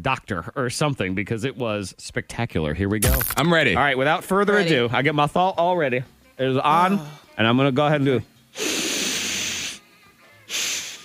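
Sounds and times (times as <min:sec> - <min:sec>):
speech: 0:00.0 - 0:08.7
sniffing through the nose: 0:08.6 - 0:09.8, 0:10.5 - 0:11.0.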